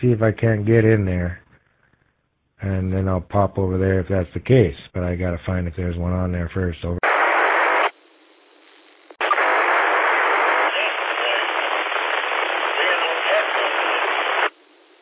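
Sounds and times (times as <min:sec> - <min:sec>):
speech: 0:00.0 - 0:01.4, 0:02.6 - 0:07.1
harsh radio static hissing: 0:06.9 - 0:15.0.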